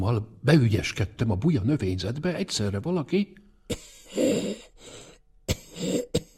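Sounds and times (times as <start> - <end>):
speech: 0.0 - 4.6
person coughing: 3.7 - 4.7, 5.4 - 6.3.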